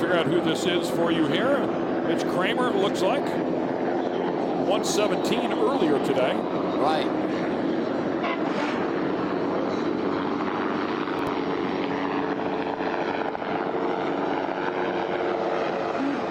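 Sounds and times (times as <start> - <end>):
helicopter rotor thumping and engine whining overhead: 0.0 - 16.2
speech: 0.1 - 3.6, 4.7 - 7.5.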